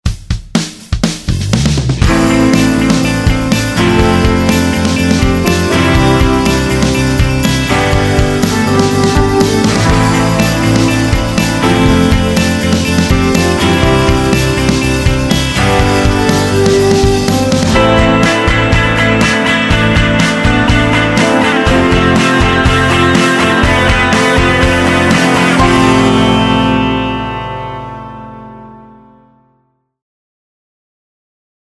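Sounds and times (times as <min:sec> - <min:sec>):
pop rock music: 0:00.1 - 0:29.4.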